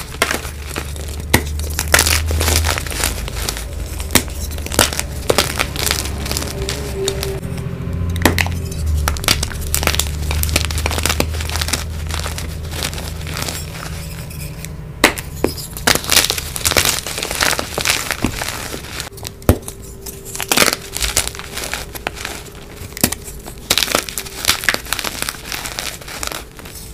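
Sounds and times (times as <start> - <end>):
dry crushing and crumbling: 0.0 - 7.5, 8.2 - 26.9
low steady hum: 0.0 - 26.9.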